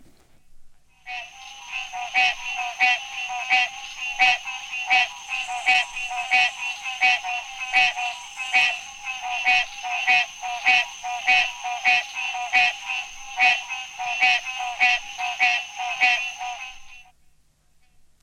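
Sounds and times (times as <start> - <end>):
green tree frog Hyla cinerea calling: 1.0 - 17.1.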